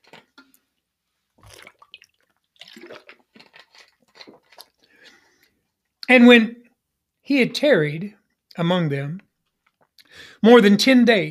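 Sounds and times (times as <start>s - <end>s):
person drinking water with wet sips and swallows: 1.4s - 5.6s
speech: 6.1s - 6.6s, 7.3s - 9.3s, 10.4s - 11.2s.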